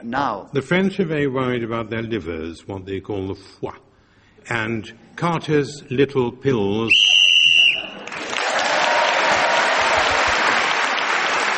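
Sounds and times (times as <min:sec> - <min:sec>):
speech: 0:00.0 - 0:07.2
short shrill whistle blast ending a round of a game: 0:06.9 - 0:08.1
loud sustained applause from an audience: 0:07.5 - 0:11.5.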